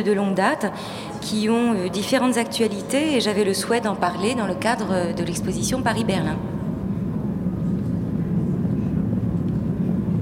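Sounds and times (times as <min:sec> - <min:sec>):
speech: 0:00.0 - 0:06.6
airplane droning rumble: 0:00.0 - 0:10.1.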